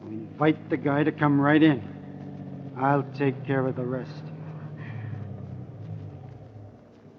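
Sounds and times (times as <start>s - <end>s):
car engine idling outside a house: 0.0s - 7.1s
speech: 0.4s - 1.9s, 2.8s - 4.3s.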